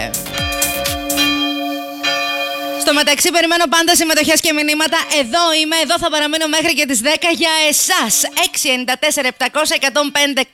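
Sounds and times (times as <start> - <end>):
church bells ringing: 0.0 - 7.2
speech: 2.9 - 10.5.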